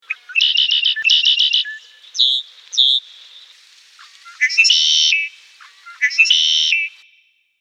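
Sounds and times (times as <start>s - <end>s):
red-winged blackbird calling: 0.0s - 7.0s.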